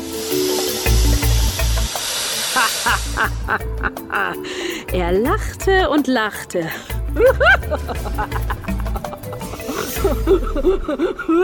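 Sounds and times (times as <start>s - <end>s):
heavy low throbbing bursts: 0.0s - 3.9s
snake hissing sound effect: 0.0s - 4.8s, 9.4s - 10.3s
speech: 2.6s - 8.6s, 9.9s - 11.4s
laughter: 7.2s - 11.4s.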